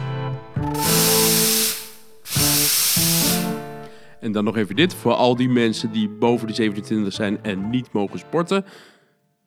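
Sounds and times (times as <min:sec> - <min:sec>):
low humming pump tone of a coffee machine: 0:00.6 - 0:04.8
coffee machine hissing steam: 0:00.6 - 0:05.0
speech: 0:04.2 - 0:09.0.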